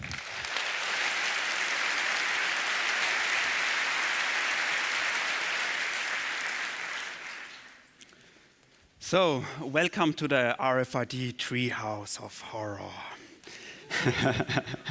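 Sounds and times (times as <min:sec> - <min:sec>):
audience applauding to welcome a speaker: 0:00.0 - 0:08.0
speech: 0:09.1 - 0:13.1, 0:14.0 - 0:14.8
laughter: 0:13.9 - 0:14.8.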